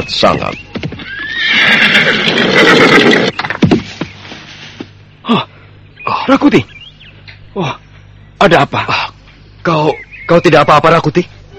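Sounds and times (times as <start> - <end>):
speech: 0.0 - 0.7, 1.5 - 3.4, 6.3 - 6.7, 7.6 - 7.8, 8.4 - 11.4
horse neighing as a rider approaches: 1.0 - 3.3.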